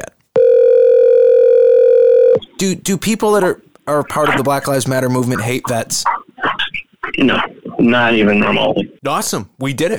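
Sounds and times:
telephone line tone: 0.4s - 2.4s
speech: 2.6s - 6.1s, 7.2s - 9.9s.

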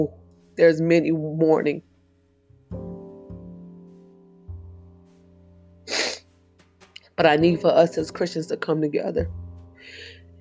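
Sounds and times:
speech: 0.0s - 1.9s, 7.2s - 10.3s
sharp nasal sniffle while crying: 5.9s - 6.3s.

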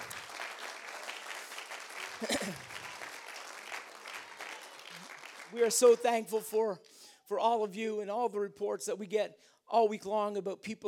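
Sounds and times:
crowd clapping: 0.0s - 6.5s
speech: 2.2s - 2.7s, 5.5s - 10.8s.

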